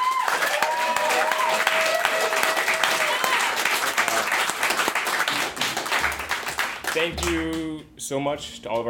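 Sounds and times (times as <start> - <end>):
faint voices and whoops: 0.0 - 3.7
crowd applauding: 0.0 - 7.8
speech: 7.0 - 8.8.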